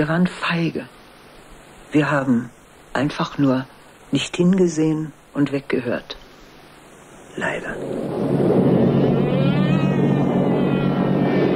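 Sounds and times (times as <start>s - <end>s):
speech: 0.0s - 1.0s, 1.9s - 6.2s, 7.4s - 8.1s
British bomber aircraft droning overhead at night in wartime: 7.5s - 11.5s.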